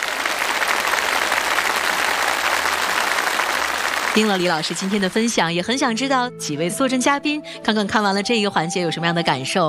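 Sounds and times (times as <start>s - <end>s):
large audience applauding: 0.0s - 5.4s
speech: 4.2s - 9.6s.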